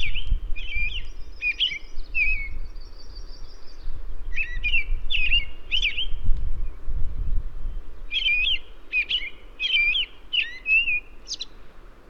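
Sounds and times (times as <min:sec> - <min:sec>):
American robin singing: 0:00.0 - 0:06.8, 0:07.7 - 0:11.7.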